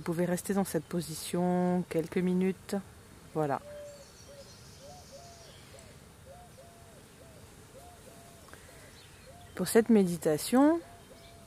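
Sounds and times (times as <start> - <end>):
speech: 0.0 - 3.8, 9.6 - 10.9
birds cooing and warbling in an outdoor garden: 3.4 - 11.4.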